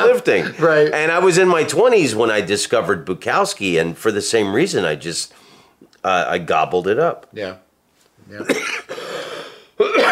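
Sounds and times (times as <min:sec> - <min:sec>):
speech: 0:00.2 - 0:05.4, 0:06.0 - 0:07.6, 0:08.3 - 0:08.9
person coughing: 0:08.4 - 0:10.0.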